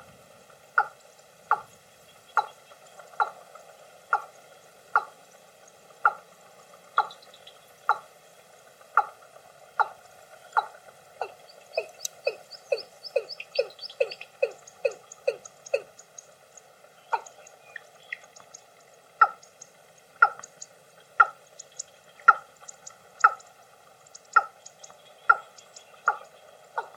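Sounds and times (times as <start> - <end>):
watercock call: 0.8 - 1.0, 2.3 - 3.4, 7.0 - 8.1, 9.0 - 16.2, 17.1 - 18.4, 19.2 - 19.6, 20.2 - 23.5, 24.2 - 26.9.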